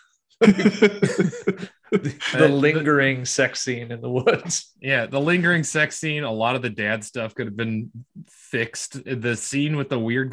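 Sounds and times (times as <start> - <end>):
person fake coughing: 0.4 - 1.7
laughter: 0.4 - 3.2, 4.0 - 5.6
speech: 0.4 - 10.3.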